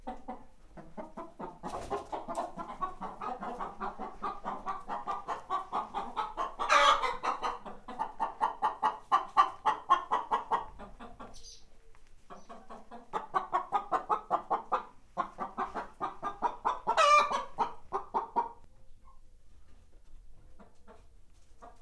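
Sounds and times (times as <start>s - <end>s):
two Hungarian hens clucking in a farmyard coop: 0.0s - 21.8s.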